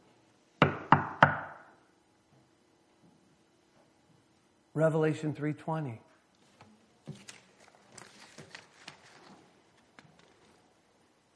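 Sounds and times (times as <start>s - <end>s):
firm knocks on a door: 0.6s - 1.6s
speech: 4.8s - 6.1s.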